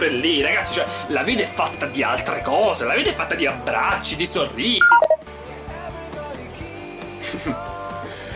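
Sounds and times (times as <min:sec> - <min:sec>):
speech: 0:00.0 - 0:05.1, 0:07.4 - 0:07.7
music: 0:00.0 - 0:08.3
smartphone message notification tone double blip: 0:04.8 - 0:05.2.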